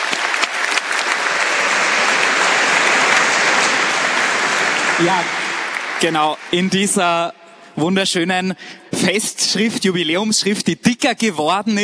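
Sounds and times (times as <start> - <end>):
audience applause: 0.0 - 7.2
speech: 5.0 - 5.4, 6.0 - 11.8.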